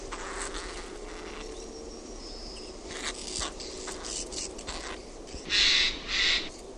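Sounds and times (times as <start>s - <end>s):
Eurasian jay softer harsh sounds: 0.1s - 6.6s
Eurasian jay grating screeches: 2.9s - 6.6s.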